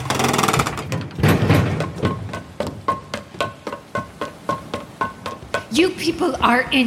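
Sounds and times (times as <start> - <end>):
heavy lighthouse door grinding open: 0.0 - 2.2
evenly spaced clunks: 0.0 - 5.7
speech: 5.8 - 6.8.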